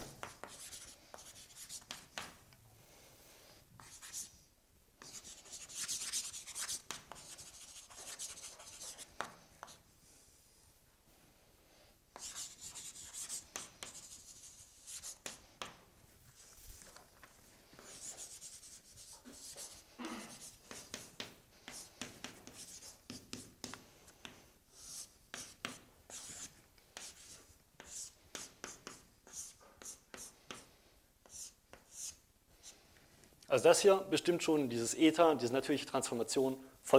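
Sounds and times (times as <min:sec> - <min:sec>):
hand-writing on a board during a mathematics lecture: 0:00.2 - 0:02.4, 0:03.8 - 0:04.4, 0:05.0 - 0:09.8, 0:12.1 - 0:17.0, 0:17.8 - 0:32.8
speech: 0:33.5 - 0:36.9.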